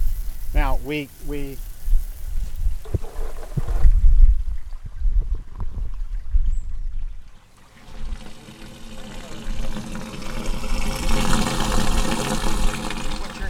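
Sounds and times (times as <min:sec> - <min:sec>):
rainwater rushing off a city sidewalk and roof into street drains: 0:00.0 - 0:06.4, 0:07.2 - 0:13.4
speech: 0:00.8 - 0:01.7.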